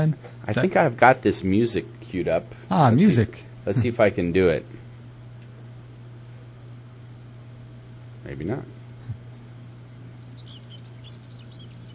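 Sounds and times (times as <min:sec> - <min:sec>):
speech: 0:00.0 - 0:04.8, 0:08.3 - 0:08.7
steady low hum: 0:00.0 - 0:11.9
small birds chirping and tweeting: 0:09.2 - 0:11.9.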